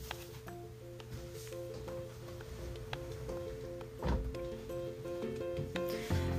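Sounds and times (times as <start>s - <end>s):
steady humming background with faint tonal drone: 0.0s - 6.3s
room door closing with a muffled thud: 4.0s - 4.4s.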